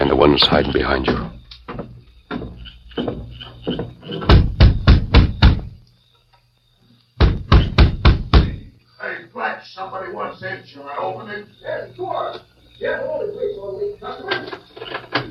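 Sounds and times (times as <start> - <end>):
speech: 0.0 - 1.3
knocking on the wooden door of a closed store: 1.0 - 5.8, 7.2 - 8.7.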